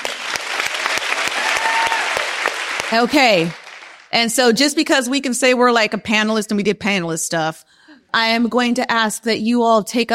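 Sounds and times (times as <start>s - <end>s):
audience at a panel discussion applauding: 0.0s - 4.1s
speech: 2.9s - 10.1s.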